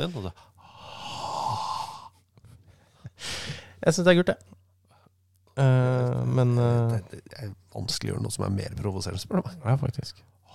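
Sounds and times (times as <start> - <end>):
speech: 0.0 - 0.5, 3.2 - 4.6, 5.6 - 10.5
person exhaling heavily toward a referee: 0.7 - 2.1, 3.2 - 3.8.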